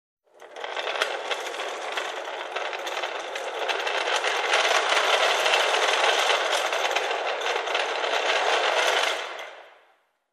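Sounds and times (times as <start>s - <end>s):
folding platform trolley being pushed: 0.3s - 9.6s.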